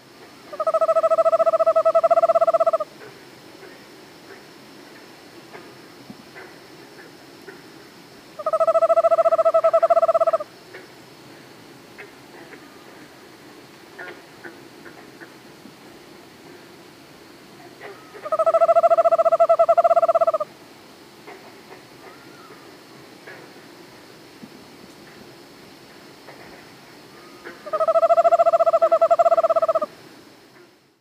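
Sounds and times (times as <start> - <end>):
faint hiss: 0.0 - 31.0
Eastern screech owl giving its monotonic trill: 0.5 - 2.9, 8.4 - 10.5, 17.8 - 20.5, 27.1 - 29.9.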